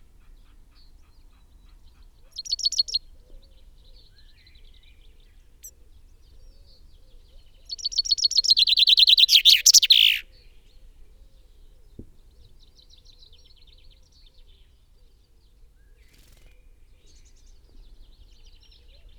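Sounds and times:
common chaffinch singing, Fringilla coelebs: 2.3s - 3.0s, 7.7s - 10.2s.

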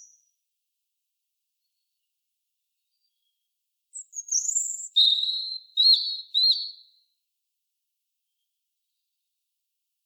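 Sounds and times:
European robin singing Erithacus rubecula: 0.0s - 0.3s, 4.0s - 7.0s.

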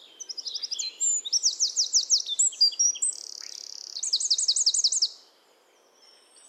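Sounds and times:
Eurasian wren Troglodytes troglodytes song with metallic trills and rattles: 0.2s - 5.2s.

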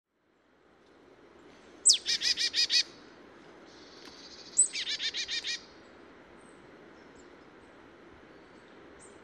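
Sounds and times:
low steady background hiss: 0.1s - 9.2s
marsh tit Poecile palustris calling: 1.8s - 3.0s, 3.7s - 5.7s.

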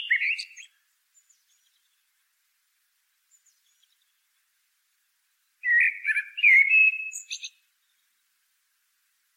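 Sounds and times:
common blackbird Turdus merula fluted song: 0.0s - 2.2s, 3.0s - 4.5s, 5.2s - 8.5s.

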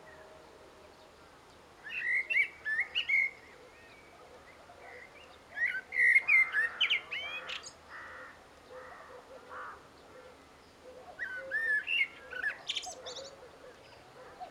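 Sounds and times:
common blackbird Turdus merula singing: 1.8s - 4.1s, 4.9s - 7.8s, 11.2s - 13.4s.

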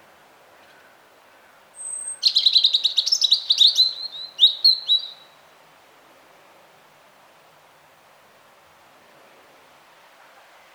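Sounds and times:
European robin Erithacus rubecula singing: 1.8s - 5.4s.

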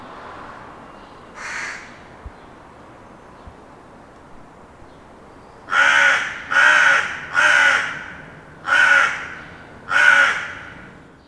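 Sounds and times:
Carrion Crow Corvus corone cawing: 1.4s - 2.1s, 5.7s - 11.0s.

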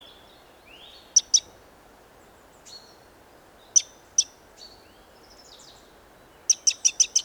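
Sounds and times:
Eurasian wren Troglodytes troglodytes giving sharp high ticking calls: 1.2s - 1.5s, 3.7s - 4.3s, 6.5s - 7.2s.

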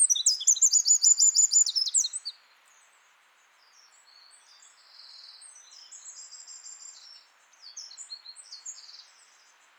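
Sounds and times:
Eurasian wren Troglodytes troglodytes singing: 0.0s - 2.3s.

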